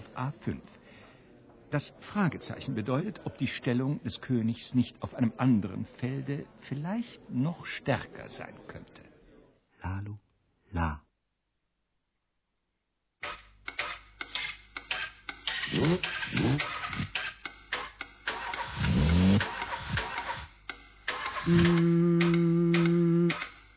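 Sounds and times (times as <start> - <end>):
speech: 0.2 - 0.8, 1.7 - 9.1, 9.8 - 11.0
motor engine running: 15.7 - 17.2, 18.3 - 20.5, 21.1 - 23.4.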